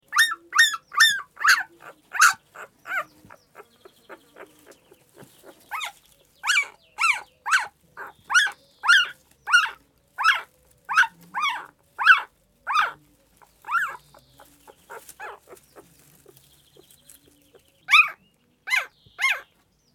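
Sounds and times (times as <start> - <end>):
puppy sounds: 0.0 - 19.6.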